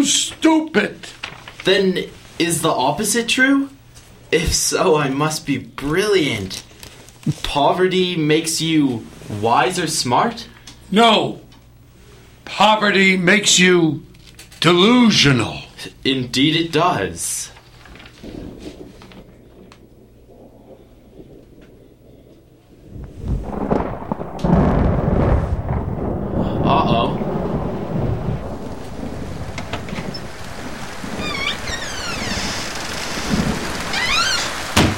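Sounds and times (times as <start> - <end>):
speech: 0.0 - 11.4, 12.5 - 17.5
deep roll of thunder: 17.5 - 34.9
heavy rain downpour: 17.5 - 34.9.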